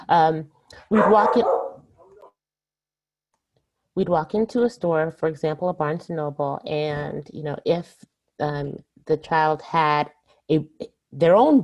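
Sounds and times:
speech: 0.1 - 1.6, 4.0 - 11.6
dog barking: 0.9 - 2.3.

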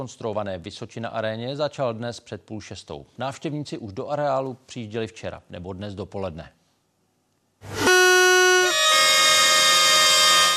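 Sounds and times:
speech: 0.0 - 6.6, 7.6 - 7.9
sports fans blaring brassy horns: 7.6 - 10.5.

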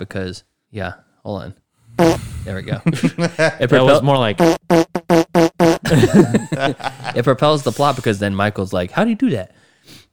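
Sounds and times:
speech: 0.0 - 5.2, 5.8 - 10.0
voice imitating a fart with buzzy blasts: 2.0 - 2.4, 4.4 - 6.0
laughter: 2.7 - 3.7, 5.8 - 8.0.

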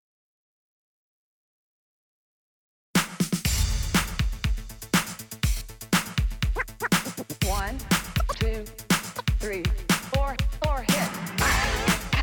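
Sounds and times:
80s-style hip hop track: 3.0 - 12.2
punchy steady drum hits: 3.0 - 12.2
pulsing bass line: 3.5 - 12.2.

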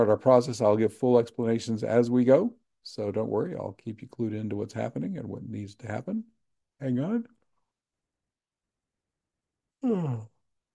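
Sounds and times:
speech: 0.0 - 7.4, 9.8 - 10.3
short energy-release yawn with voiced exhale: 9.8 - 10.4.

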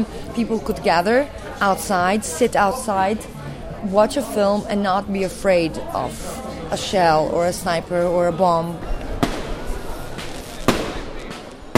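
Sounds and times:
speech: 0.0 - 9.0
faint murmuring voices: 0.0 - 11.7
rumbling crowded outdoor background: 0.0 - 11.7
fireworks bursting at an opening gala: 9.1 - 11.7.

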